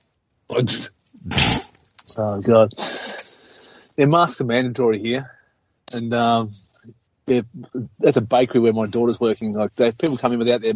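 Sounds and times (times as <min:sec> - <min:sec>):
speech: 0:00.6 - 0:01.6, 0:02.2 - 0:03.0, 0:04.0 - 0:10.7
person sneezing: 0:01.2 - 0:01.7.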